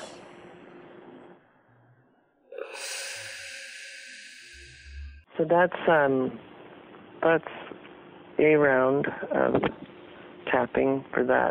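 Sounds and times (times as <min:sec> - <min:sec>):
long bright sustained hiss: 0:00.0 - 0:00.4, 0:02.6 - 0:05.3
deep breath drawn and released: 0:01.7 - 0:05.3
speech: 0:05.4 - 0:06.5, 0:07.2 - 0:07.6, 0:08.4 - 0:09.9, 0:10.5 - 0:11.4.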